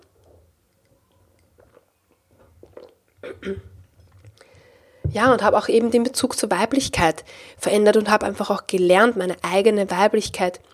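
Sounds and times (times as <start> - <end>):
soft wet mouth noises: 0.0 - 4.5
person sipping water: 1.1 - 5.0
gulp and swallow of water: 1.4 - 4.5
speech: 3.4 - 3.7, 5.1 - 10.7.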